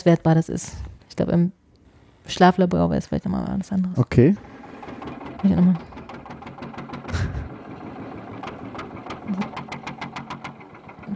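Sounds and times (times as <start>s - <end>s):
speech: 0.0s - 1.6s, 2.3s - 4.6s, 5.4s - 5.9s, 9.3s - 9.5s
vintage tractor engine idling: 4.4s - 11.1s.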